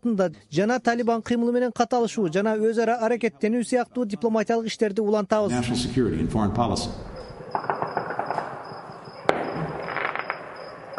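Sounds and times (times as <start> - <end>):
speech: 0.0 - 7.7
celebratory fireworks salute crackling and popping: 7.6 - 10.9
loud firework bang: 9.2 - 10.9.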